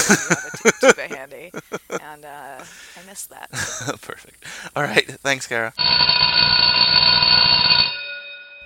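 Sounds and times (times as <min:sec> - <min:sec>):
laughter: 0:00.0 - 0:02.9, 0:03.5 - 0:05.1
speech: 0:00.1 - 0:07.2
loud school bell ringing: 0:05.8 - 0:08.6.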